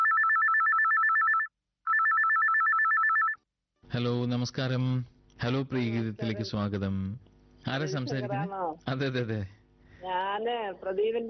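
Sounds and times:
telephone ringing with an incoming call: 0.0s - 3.4s
speech: 3.9s - 11.2s.

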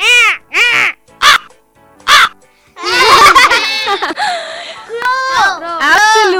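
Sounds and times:
crow cawing: 0.0s - 1.5s, 2.1s - 2.4s
overlapping excited voices: 2.8s - 4.2s, 4.8s - 6.3s
people laughing: 2.8s - 5.0s.

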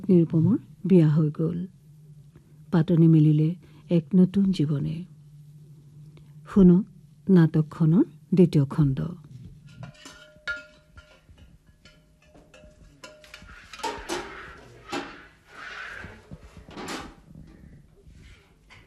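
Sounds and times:
speech: 0.1s - 1.8s, 2.7s - 5.1s, 6.5s - 9.2s
kitchen utensils and dishes clattering while vegetables are cut: 9.6s - 15.4s.

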